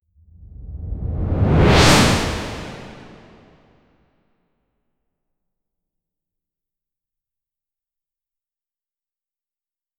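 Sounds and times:
fast futuristic whoosh: 0.4s - 3.6s.

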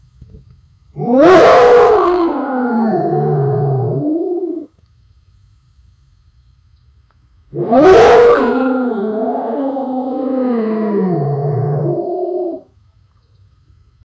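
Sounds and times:
lion roaring: 1.0s - 4.7s, 7.6s - 12.6s.

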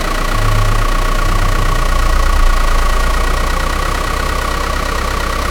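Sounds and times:
bus braking: 0.2s - 5.3s.

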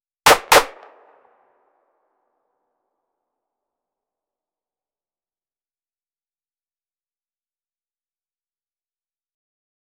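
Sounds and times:
rifle gunshot single fire: 0.3s - 1.3s.

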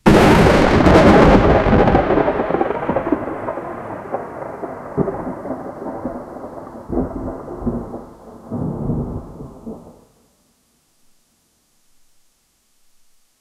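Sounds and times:
cinematic comic style thunder: 0.0s - 10.0s.

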